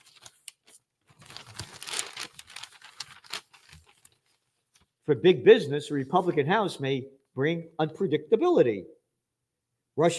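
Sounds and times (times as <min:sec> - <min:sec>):
toilet paper crinkling and tearing: 0:00.0 - 0:04.9
speech: 0:05.1 - 0:09.0, 0:10.0 - 0:10.1.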